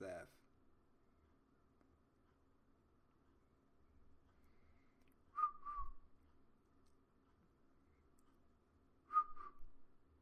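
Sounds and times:
speech: 0.0s - 0.4s
faint low hum: 0.0s - 10.1s
person whistling short breathy bursts: 5.4s - 5.9s, 9.1s - 9.6s.

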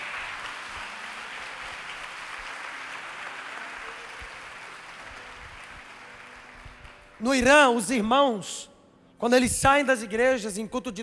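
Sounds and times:
audience applauding: 0.0s - 8.0s
speech: 7.2s - 11.0s.

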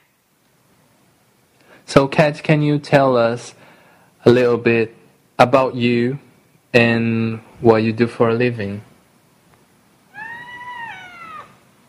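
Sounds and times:
speech: 1.8s - 8.9s
cat meowing: 10.1s - 11.6s.

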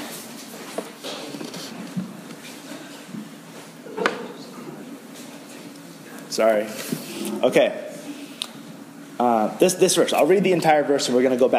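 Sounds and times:
steady room noise: 0.0s - 11.5s
chair being grabbed and shifted: 0.6s - 2.5s, 6.8s - 7.7s
speech: 6.4s - 7.8s, 9.4s - 11.5s.

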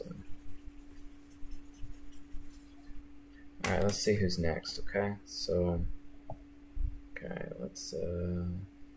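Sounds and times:
eraser rubbing across a small whiteboard: 0.0s - 3.0s
steady low hum: 0.0s - 8.9s
speech: 3.7s - 6.0s, 7.2s - 8.7s.

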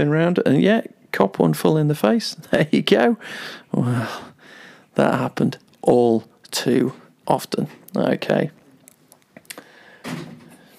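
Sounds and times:
speech: 0.0s - 4.3s, 5.0s - 8.6s
door slamming: 10.0s - 10.6s.

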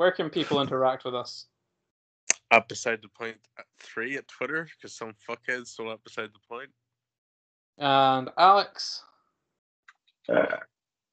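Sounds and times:
speech: 0.0s - 1.5s, 2.5s - 6.8s, 7.8s - 9.1s, 10.3s - 10.7s
laughter: 0.4s - 0.8s, 2.5s - 6.2s
throaty burp: 10.3s - 10.6s.

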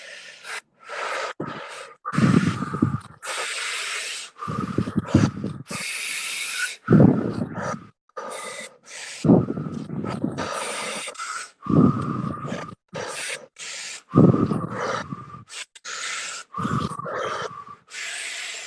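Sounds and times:
deep steady breathing through the mouth during a paced breathing exercise: 0.0s - 18.6s.

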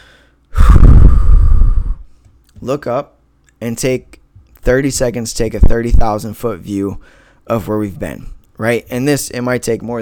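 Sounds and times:
person taking a deep breath: 0.0s - 2.2s, 7.0s - 7.4s
speech: 2.6s - 10.0s.

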